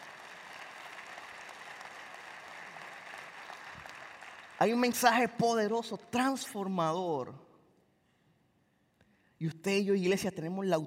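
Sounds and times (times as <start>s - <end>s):
large crowd applauding: 0.0s - 5.2s
speech: 4.6s - 7.4s, 9.4s - 10.8s.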